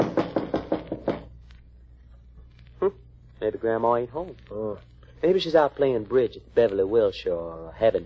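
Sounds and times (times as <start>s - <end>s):
firm knocks on the wooden door of a house with a porch: 0.0s - 1.3s
speech: 2.9s - 8.0s.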